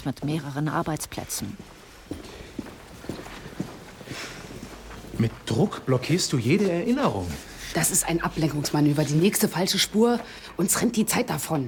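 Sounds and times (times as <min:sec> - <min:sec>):
speech: 0:00.0 - 0:02.2, 0:05.2 - 0:11.6
footsteps marching through a long large hall with workstations: 0:01.4 - 0:07.5, 0:08.3 - 0:11.6.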